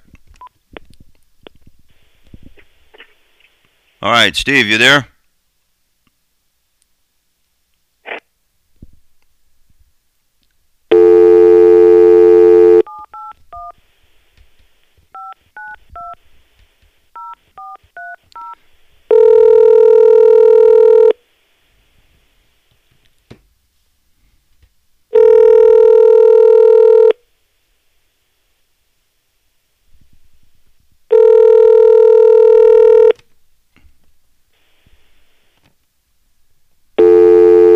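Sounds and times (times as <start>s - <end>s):
speech: 4.0s - 5.1s
telephone dial tone: 10.9s - 13.7s, 19.1s - 21.2s, 25.2s - 27.2s, 31.1s - 33.2s, 37.0s - 37.7s.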